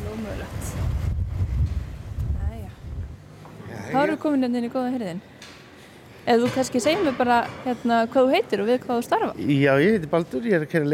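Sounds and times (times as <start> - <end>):
heavy wind buffeting the microphone outdoors during an interview: 0.0 - 3.2
speech: 4.0 - 5.3, 6.3 - 10.9.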